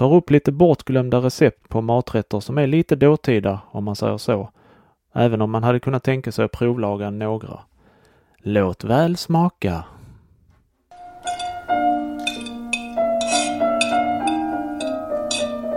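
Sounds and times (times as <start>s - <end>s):
speech: 0.0s - 7.7s, 8.4s - 10.0s
cutlery scraping and squeaking against a plate: 11.2s - 15.6s.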